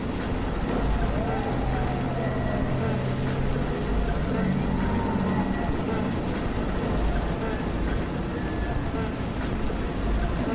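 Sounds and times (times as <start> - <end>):
street traffic of cars, trucks and buses rumbling: 0.0 - 10.5
faint voices: 0.3 - 10.5
rising and falling tones, possibly brakes or horns: 0.8 - 7.0.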